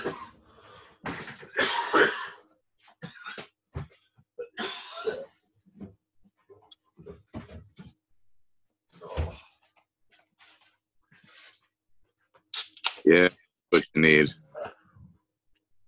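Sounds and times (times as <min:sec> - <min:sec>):
person clearing throat: 0:00.0 - 0:00.4, 0:01.5 - 0:02.4, 0:03.0 - 0:03.5, 0:04.4 - 0:05.4
person coughing harshly: 0:00.0 - 0:00.4, 0:01.5 - 0:02.4, 0:04.4 - 0:05.4
speech: 0:13.1 - 0:13.4, 0:14.0 - 0:14.4.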